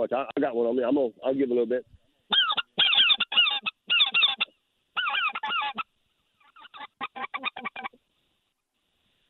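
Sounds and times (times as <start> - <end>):
speech: 0.0 - 2.4
flock of speckled-belly geese honking overhead during a hunt: 2.3 - 5.8, 6.4 - 8.0.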